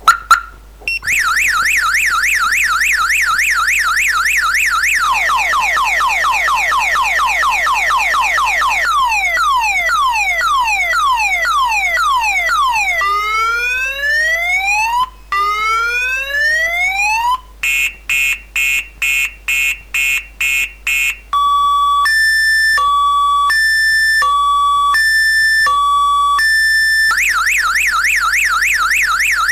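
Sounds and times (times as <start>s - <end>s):
car siren: 0.0s - 18.4s, 19.1s - 29.5s.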